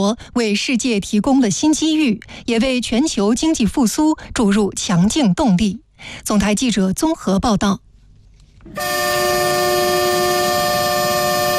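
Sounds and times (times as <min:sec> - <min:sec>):
speech: 0:00.0 - 0:07.8, 0:08.7 - 0:09.4
loud sustained freight train horn blasting: 0:08.7 - 0:11.5.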